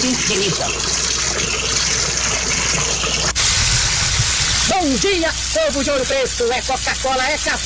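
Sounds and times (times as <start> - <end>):
tap water gushing out in Amarantina, Ouro Preto: 0.0 - 7.6
speech: 0.2 - 1.7, 4.7 - 7.6.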